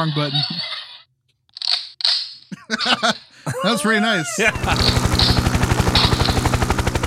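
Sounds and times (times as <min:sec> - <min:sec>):
speech: 0:00.0 - 0:00.6, 0:02.7 - 0:05.4
laughter: 0:02.5 - 0:05.1
gunshot sound effect: 0:04.5 - 0:07.0
helicopter sound effect with rotor thumping: 0:04.5 - 0:07.0.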